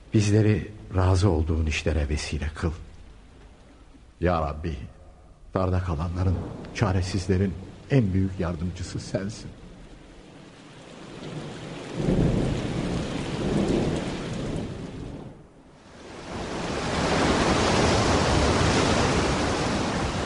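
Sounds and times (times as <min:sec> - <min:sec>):
heavy rain from a storm at sea battering a ship: 0:00.0 - 0:20.2
speech: 0:00.2 - 0:02.9, 0:04.2 - 0:09.6, 0:12.0 - 0:12.3
thunder from a storm at sea: 0:05.1 - 0:20.2.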